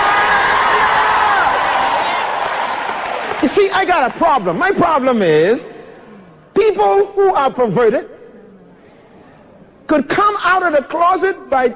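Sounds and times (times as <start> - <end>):
large church audience shouting and cheering: 0.0 - 4.4
speech: 3.4 - 5.7, 6.6 - 8.1, 9.9 - 11.7.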